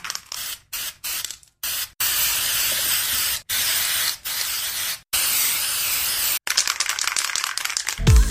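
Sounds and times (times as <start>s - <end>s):
aerosol spray paint can hissing: 0.0s - 8.0s
faint rattle: 6.4s - 8.0s.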